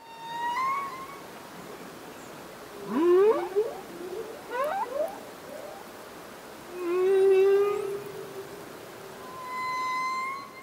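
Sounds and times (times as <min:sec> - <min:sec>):
male humpback whale song: 0:00.0 - 0:01.3, 0:02.8 - 0:05.9, 0:06.7 - 0:10.6.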